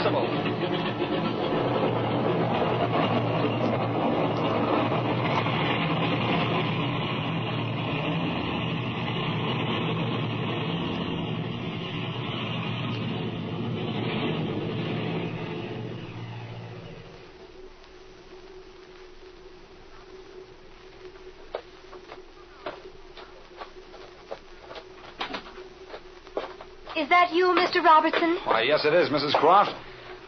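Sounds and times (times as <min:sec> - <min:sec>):
airplane engines roaring during takeoff: 0:00.0 - 0:17.4
speech: 0:27.1 - 0:29.8.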